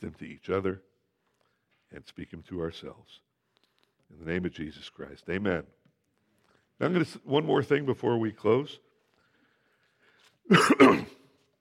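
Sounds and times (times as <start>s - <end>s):
speech: 0.0s - 0.9s, 1.9s - 3.3s, 4.1s - 5.8s, 6.8s - 8.9s, 10.5s - 11.2s
person coughing: 10.5s - 11.3s.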